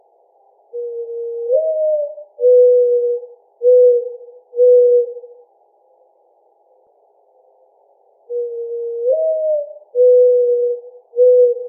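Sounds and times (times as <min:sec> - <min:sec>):
Mourning Dove cooing: 0:00.8 - 0:05.4, 0:08.3 - 0:11.6.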